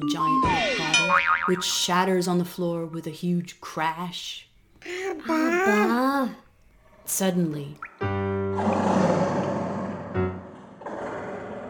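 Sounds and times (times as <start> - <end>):
speech: 0.0 - 4.5, 5.2 - 6.4, 7.1 - 9.1
deep roar echoing from deep in a dark cave: 8.6 - 11.6.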